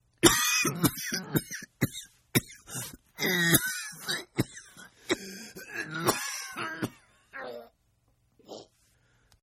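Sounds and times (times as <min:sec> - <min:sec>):
sick man coughing: 0:00.2 - 0:07.1.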